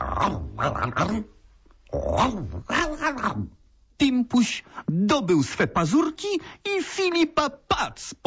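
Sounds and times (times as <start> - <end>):
voice imitating a dog's whimpering: 0.0 - 3.6
speech: 0.6 - 8.2.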